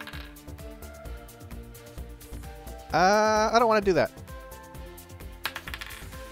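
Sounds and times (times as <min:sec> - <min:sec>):
dice rolling on a table: 0:00.0 - 0:00.4, 0:05.4 - 0:06.3
speech: 0:02.9 - 0:04.2.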